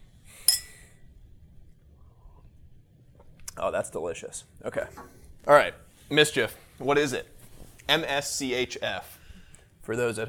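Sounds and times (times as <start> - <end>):
glasses clinking in a toast: 0.5 - 0.8
speech: 3.6 - 7.3, 7.9 - 9.2, 9.8 - 10.2.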